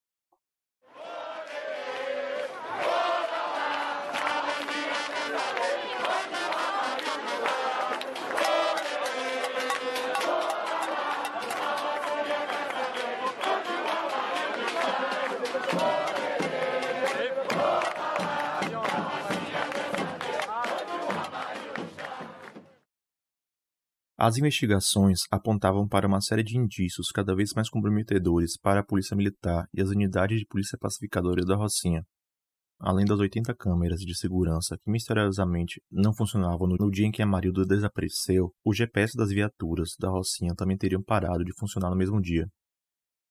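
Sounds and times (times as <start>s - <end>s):
large protest crowd chanting in unison at a demonstration in Brazil: 0.9s - 22.8s
speech: 24.2s - 32.2s, 32.8s - 42.6s.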